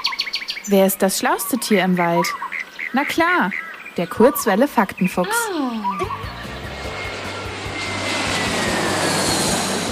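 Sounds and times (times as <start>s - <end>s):
speech: 0.7s - 6.2s
large airplane taking off at an airport: 5.8s - 9.9s.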